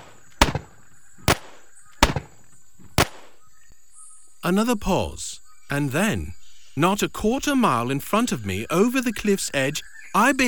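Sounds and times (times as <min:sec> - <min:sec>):
cannon shots and musket volley: 0:00.0 - 0:02.4, 0:03.0 - 0:03.3
faint steady hiss: 0:00.0 - 0:02.4, 0:03.0 - 0:03.3
crackling echoes of the blasts: 0:00.0 - 0:03.4
speech: 0:04.5 - 0:10.4.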